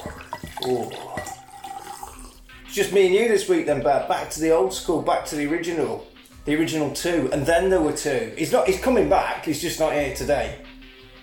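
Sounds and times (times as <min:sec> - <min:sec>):
drink pouring into a glass: 0:00.0 - 0:02.5
speech: 0:00.6 - 0:01.1, 0:02.8 - 0:10.7.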